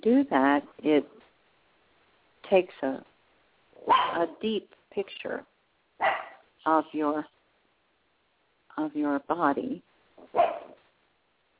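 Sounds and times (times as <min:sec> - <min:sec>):
speech: 0:00.0 - 0:01.2, 0:02.5 - 0:03.1, 0:03.8 - 0:07.4, 0:08.8 - 0:10.6
small dog barking: 0:03.8 - 0:04.3, 0:06.0 - 0:06.5, 0:10.2 - 0:10.8
small dog yipping: 0:03.9 - 0:04.2, 0:06.0 - 0:06.4, 0:10.3 - 0:10.8.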